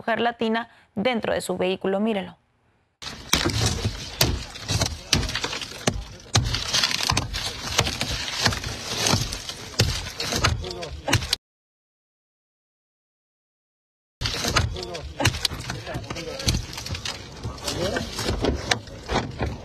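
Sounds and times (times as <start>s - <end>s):
speech: 0.0s - 2.4s
car window glass being smashed by immigration agents in Lee County: 3.0s - 11.3s, 14.2s - 19.6s
voices and commotion: 3.4s - 9.4s, 10.1s - 11.4s, 14.3s - 18.8s.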